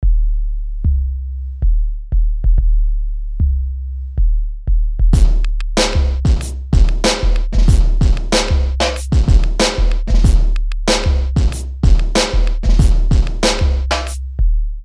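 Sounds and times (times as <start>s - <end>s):
kick drum through a Sub Kick microphone: 0.0s - 0.3s, 1.6s - 3.6s, 4.2s - 14.8s.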